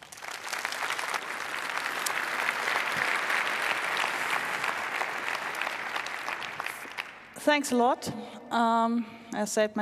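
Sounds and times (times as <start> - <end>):
sustained audience applause from a large crowd: 0.0 - 7.4
speech: 7.4 - 9.8.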